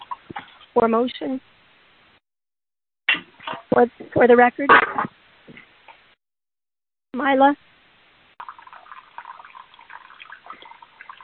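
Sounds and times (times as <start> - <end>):
speech: 0.8 - 1.6, 3.8 - 5.1, 7.2 - 7.7
water running from a tap through a phone line: 8.4 - 11.2.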